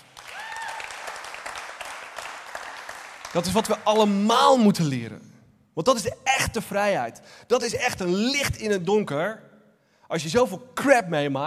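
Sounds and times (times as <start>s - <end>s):
crowd applauding: 0.0s - 4.2s
speech: 3.3s - 9.5s, 10.1s - 11.4s.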